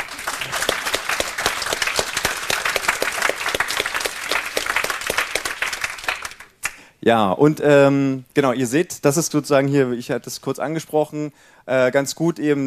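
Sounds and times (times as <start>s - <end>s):
audience applause: 0.0s - 6.6s
speech: 7.1s - 12.6s.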